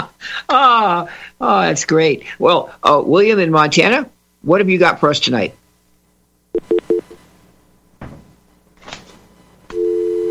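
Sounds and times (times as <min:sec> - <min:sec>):
speech: 0:00.5 - 0:05.6
telephone line beeps after a caller's line drops: 0:06.6 - 0:07.2, 0:09.7 - 0:10.2.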